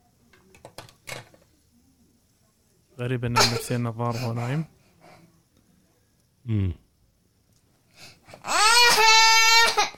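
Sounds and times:
speech: 0:03.0 - 0:04.8, 0:06.5 - 0:06.8
child screaming during night terror: 0:08.5 - 0:09.9.

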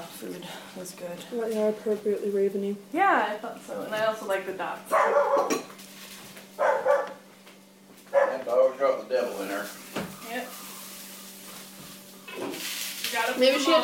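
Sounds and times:
speech: 0:00.2 - 0:05.8, 0:08.5 - 0:10.6, 0:13.1 - 0:13.8
female dog barking: 0:04.9 - 0:05.6, 0:06.6 - 0:07.2, 0:08.1 - 0:08.5.

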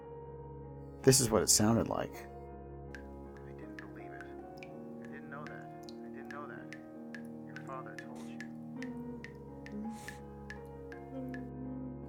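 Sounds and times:
speech: 0:01.0 - 0:02.3
water flowing steadily with a low murmur: 0:03.0 - 0:11.2.

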